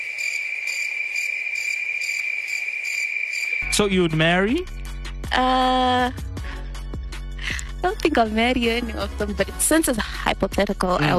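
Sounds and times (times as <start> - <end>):
cricket chirping: 0.0 - 4.4
speech: 3.6 - 6.3, 7.8 - 11.1.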